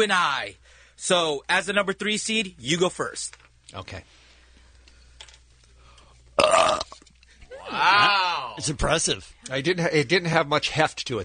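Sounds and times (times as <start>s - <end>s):
speech: 0.0s - 4.2s, 7.7s - 11.2s
quiet breathing: 0.6s - 1.0s, 4.0s - 6.3s
loud raspy burp: 6.4s - 7.0s.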